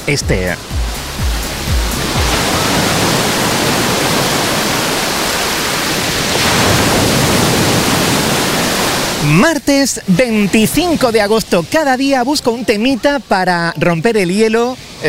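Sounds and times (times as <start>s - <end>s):
speech: 0.0s - 1.9s, 9.3s - 15.0s
Mediterranean sea waves crashing against a beach breakwater: 0.0s - 13.6s
low thuds: 0.2s - 3.5s.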